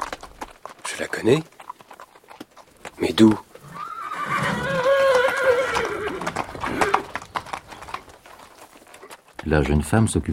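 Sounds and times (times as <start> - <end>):
horse hoof clops: 0.0 - 10.3
speech: 1.0 - 1.6, 3.0 - 3.5, 9.5 - 10.3
horse tied to a tree whinnying: 3.5 - 8.1.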